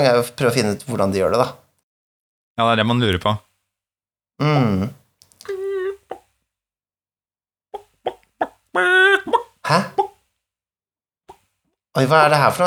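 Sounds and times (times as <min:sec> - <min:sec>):
speech: 0:00.0 - 0:01.6, 0:02.6 - 0:03.5, 0:04.4 - 0:05.6, 0:09.7 - 0:10.0, 0:12.0 - 0:12.6
hen clucking: 0:05.5 - 0:06.3, 0:07.7 - 0:10.2
hen squawking: 0:07.8 - 0:10.2.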